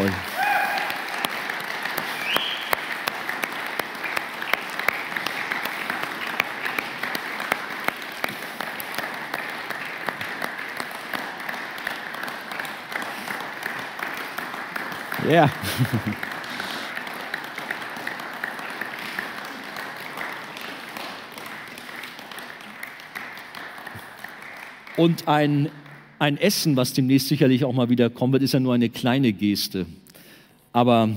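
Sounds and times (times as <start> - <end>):
cheers: 0.0 - 3.0
sustained applause from a sizable crowd: 0.0 - 26.0
whistles: 2.1 - 2.8
laughter: 15.2 - 16.9
speech: 15.3 - 16.3, 25.0 - 30.0, 30.8 - 31.1.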